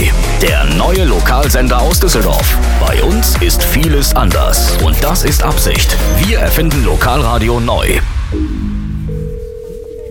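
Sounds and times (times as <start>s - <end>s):
low musical rumble: 0.0s - 10.1s
speech: 0.4s - 8.8s
telephone ringback tone while a call is placed: 9.1s - 10.1s.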